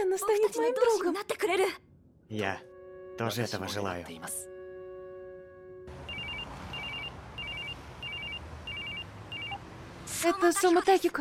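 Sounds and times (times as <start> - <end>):
speech: 0.1 - 4.5, 10.2 - 11.2
telephone ringing for an incoming call: 6.1 - 9.6.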